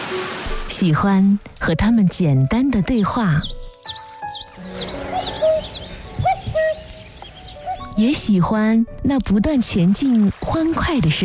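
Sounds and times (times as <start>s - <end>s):
speech: 0.2s - 3.7s, 4.6s - 5.2s, 8.0s - 11.2s
birds chirping in a forest: 2.1s - 9.0s
bird whistling in a forest: 3.3s - 8.0s.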